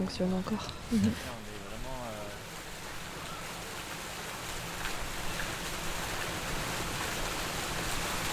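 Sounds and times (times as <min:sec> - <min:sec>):
speech: 0:00.0 - 0:01.5
rain-like patter from outdoor sound installation dripping down stairs: 0:00.0 - 0:08.3.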